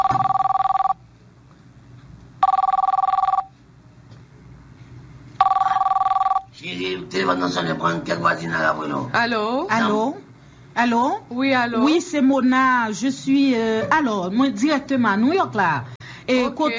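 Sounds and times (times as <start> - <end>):
telephone ringing: 0.0 - 1.0, 2.4 - 3.6, 5.4 - 6.6
speech: 7.3 - 10.2, 10.8 - 16.7.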